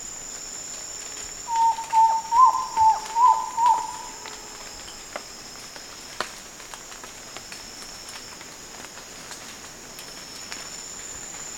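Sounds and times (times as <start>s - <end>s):
frog calls: 1.5s - 4.6s.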